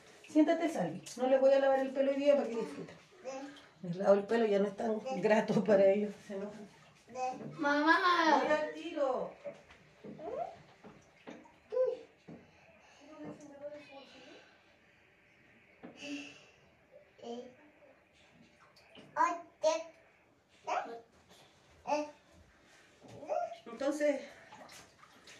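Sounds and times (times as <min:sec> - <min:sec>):
water pouring into a very full bathtub: 0:00.0 - 0:05.5, 0:06.3 - 0:09.4, 0:10.0 - 0:12.3, 0:23.6 - 0:25.3
speech: 0:00.3 - 0:10.6, 0:16.0 - 0:16.4, 0:17.2 - 0:17.6, 0:19.2 - 0:19.9, 0:21.9 - 0:22.2, 0:23.8 - 0:24.4.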